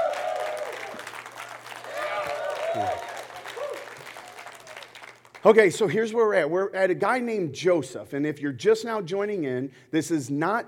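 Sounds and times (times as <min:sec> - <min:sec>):
scattered cheers and voices: 0:00.0 - 0:01.1, 0:01.8 - 0:04.9
large indoor church audience applauding: 0:00.0 - 0:05.4
speech: 0:02.8 - 0:03.1, 0:05.4 - 0:10.6.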